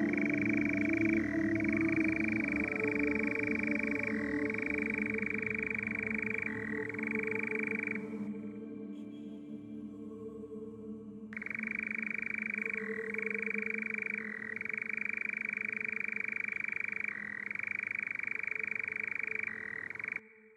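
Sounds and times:
nightjar churring: 0.0 - 8.4, 11.3 - 20.2.

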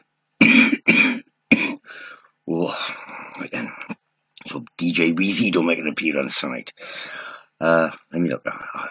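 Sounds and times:
loud coughs: 0.4 - 1.8
speech: 5.0 - 8.9.

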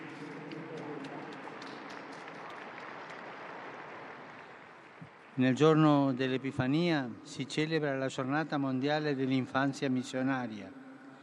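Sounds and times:
crowd applauding: 0.0 - 5.4
speech: 5.4 - 10.8.

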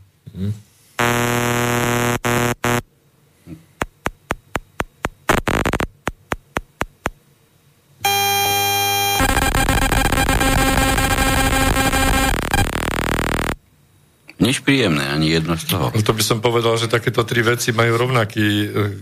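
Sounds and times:
speech: 0.4 - 0.7, 14.7 - 19.0
harsh electronic buzzing of radio signals from a wireless mouse: 1.0 - 2.9, 3.8 - 7.2, 8.0 - 13.6
quick rhythmic radio signal pulses: 3.8 - 7.2.

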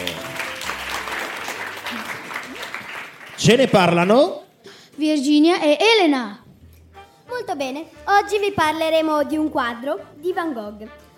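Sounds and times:
crowd applauding: 0.0 - 4.2
speech: 3.4 - 4.4, 5.0 - 6.4, 7.4 - 11.0.

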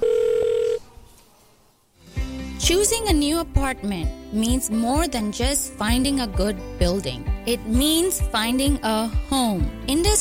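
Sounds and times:
telephone ringback tone as a call is placed: 0.0 - 0.8
speech: 2.7 - 10.1.

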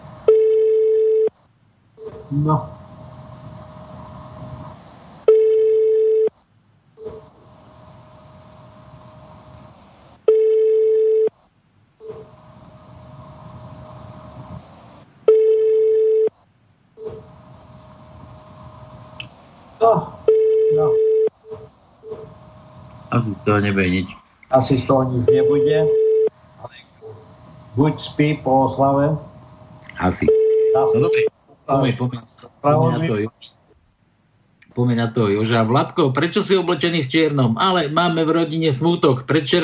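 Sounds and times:
telephone ringback tone beeps: 0.3 - 1.3, 5.3 - 6.3, 10.3 - 11.3, 15.3 - 16.3, 20.3 - 21.3, 25.3 - 26.3, 30.3 - 31.3
speech: 2.3 - 2.8, 23.5 - 26.0, 27.8 - 29.3, 30.0 - 30.3, 30.9 - 33.5, 34.8 - 39.6.

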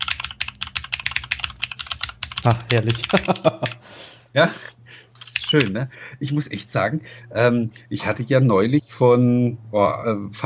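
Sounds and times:
rapid typing on a mechanical gaming keyboard: 0.0 - 3.8, 5.2 - 5.8
speech: 2.4 - 10.4
laughter: 2.5 - 3.8.

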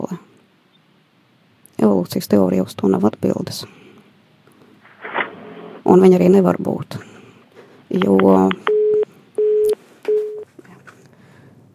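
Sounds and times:
speech: 1.8 - 3.8, 6.0 - 7.1, 7.9 - 8.7
telephone busy tone after a dropped call: 8.1 - 10.5.

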